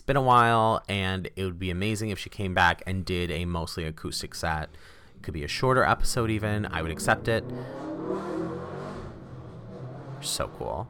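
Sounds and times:
speech: 0.1s - 8.3s, 10.2s - 10.8s
motorbike engine revving past outside: 5.1s - 10.8s.

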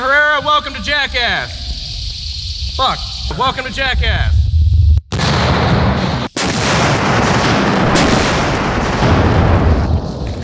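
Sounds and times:
speech: 0.6s - 1.6s, 2.8s - 4.4s
gunshot: 5.1s - 10.4s.

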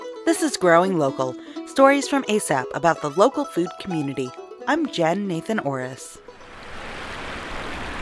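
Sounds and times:
speech: 0.4s - 6.2s
water rushing over dam into raceways: 6.3s - 8.0s.

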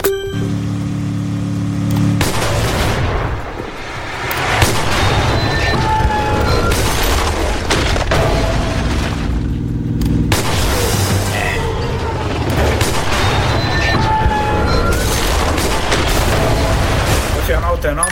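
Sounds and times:
electronic musical tones: 0.0s - 1.6s
video game explosions: 1.5s - 18.1s
video game gunfire in rapid bursts: 2.0s - 11.5s, 12.5s - 17.8s.

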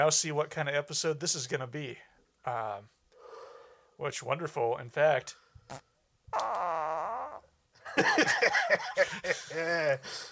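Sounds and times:
speech: 0.0s - 3.0s, 4.0s - 6.6s, 8.0s - 10.3s
voice imitating fart noises: 5.7s - 7.6s
laughter: 7.9s - 10.2s.

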